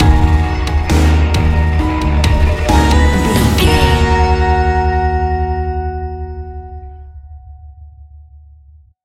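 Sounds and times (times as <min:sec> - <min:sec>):
nocturnal terror stinger: 0:00.0 - 0:08.0.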